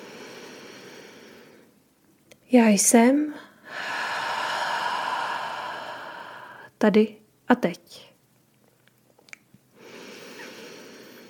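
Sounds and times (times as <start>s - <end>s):
deep inhalation: 0.0s - 1.7s, 3.6s - 6.7s, 9.8s - 11.2s
speech: 2.5s - 3.9s, 6.8s - 8.1s.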